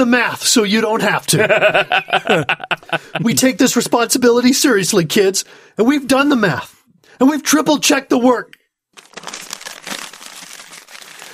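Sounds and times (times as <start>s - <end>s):
speech: 0.0s - 8.6s
laughter: 1.2s - 3.6s
paper rustling and crinkling: 8.9s - 11.3s.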